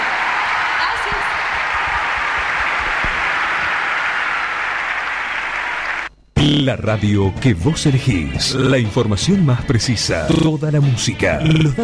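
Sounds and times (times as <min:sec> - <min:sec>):
dense applause from a large audience: 0:00.0 - 0:06.1
speech: 0:06.4 - 0:11.8.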